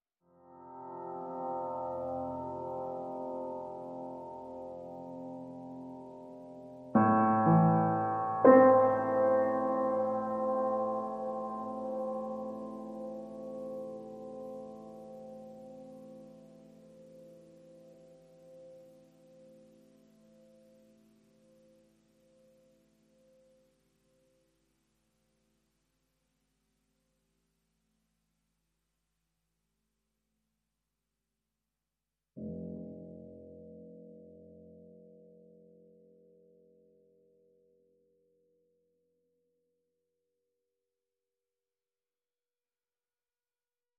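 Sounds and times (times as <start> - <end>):
lead piano: 0.3 - 24.0.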